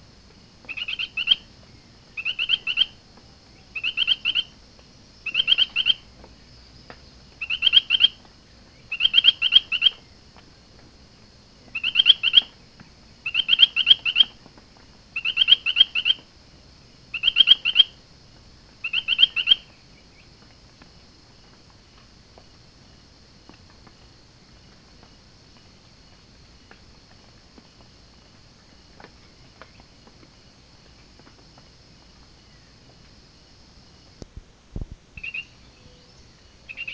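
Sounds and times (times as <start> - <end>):
Allobates myersi frog calling: 0.6 - 1.5, 2.1 - 3.0, 3.6 - 4.6, 5.2 - 6.1, 7.4 - 10.1, 11.7 - 12.6, 13.2 - 14.4, 15.2 - 16.3, 17.1 - 18.0, 18.8 - 20.3, 35.2 - 36.9.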